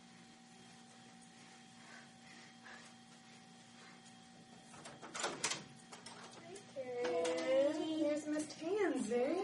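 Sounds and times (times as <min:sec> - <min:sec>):
steady low hum: 0:00.0 - 0:09.4
door being opened with clunks and rattling scrapes: 0:04.8 - 0:06.4.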